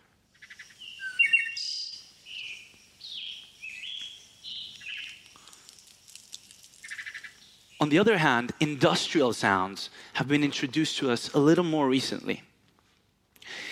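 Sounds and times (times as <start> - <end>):
birds chirping outside a window: 0.3 - 8.8
speech: 7.8 - 12.5.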